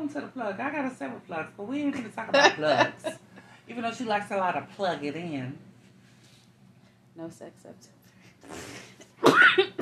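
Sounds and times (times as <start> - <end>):
speech: 0.1 - 5.7, 7.2 - 8.9
person coughing harshly after taking a hit: 9.2 - 9.8.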